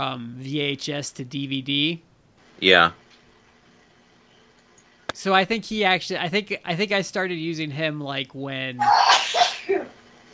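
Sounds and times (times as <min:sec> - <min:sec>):
speech: 0:00.0 - 0:03.0, 0:05.2 - 0:09.4
person sneezing: 0:08.8 - 0:09.9.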